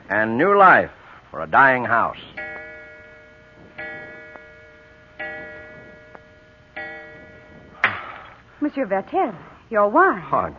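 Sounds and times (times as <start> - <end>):
speech: 0.1 - 2.5, 8.6 - 10.5
clock striking with bell-like chimes: 2.3 - 8.4.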